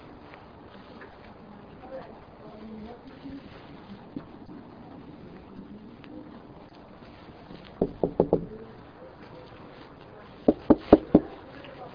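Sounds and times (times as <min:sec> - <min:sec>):
police knocking firmly on a door: 0:07.8 - 0:08.6, 0:10.5 - 0:11.3.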